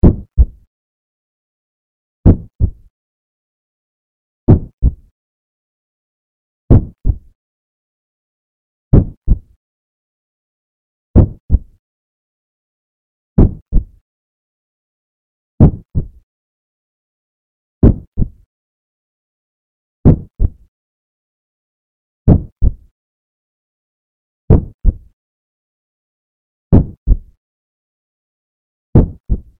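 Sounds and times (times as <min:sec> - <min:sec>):
heartbeat: 0:00.0 - 0:00.7, 0:02.2 - 0:02.9, 0:04.5 - 0:05.1, 0:06.7 - 0:07.3, 0:08.9 - 0:09.6, 0:11.2 - 0:11.8, 0:13.4 - 0:14.0, 0:15.6 - 0:16.2, 0:17.8 - 0:18.4, 0:20.0 - 0:20.7, 0:22.3 - 0:22.9, 0:24.5 - 0:25.1, 0:26.7 - 0:27.4, 0:29.0 - 0:29.5.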